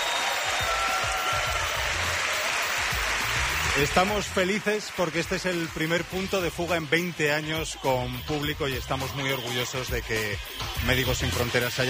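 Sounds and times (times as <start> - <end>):
theatre audience applause: 0.0 - 6.4
speech: 3.8 - 11.8.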